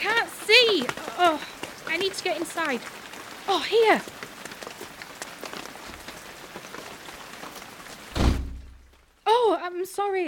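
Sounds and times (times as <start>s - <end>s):
steady rain pattering on a hard surface: 0.0s - 10.2s
speech: 0.8s - 4.2s, 9.6s - 10.2s
heavy thud: 8.1s - 8.9s.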